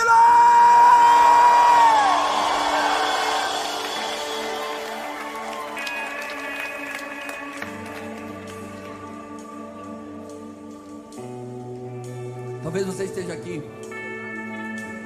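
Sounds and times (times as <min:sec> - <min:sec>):
large crowd roaring and whooping: 0:00.0 - 0:09.4
speech: 0:12.8 - 0:14.0.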